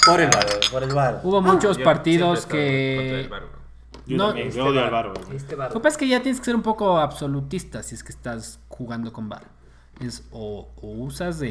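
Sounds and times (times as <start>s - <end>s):
glasses clinking in a toast: 0.0s - 1.8s
speech: 0.0s - 11.5s.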